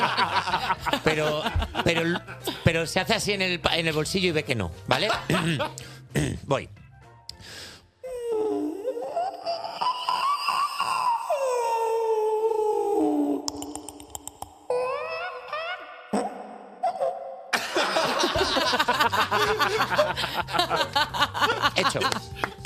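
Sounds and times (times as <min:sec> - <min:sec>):
laughter: 0:00.0 - 0:02.8, 0:04.9 - 0:06.4, 0:16.9 - 0:22.6
speech: 0:00.9 - 0:06.8, 0:18.8 - 0:22.5
person imitating a whale call: 0:08.1 - 0:14.1, 0:14.7 - 0:17.5.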